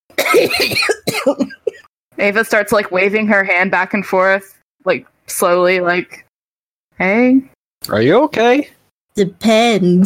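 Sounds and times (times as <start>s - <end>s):
harsh violent hacking coughs: 0.1s - 1.9s
speech: 0.1s - 6.2s, 7.0s - 10.0s.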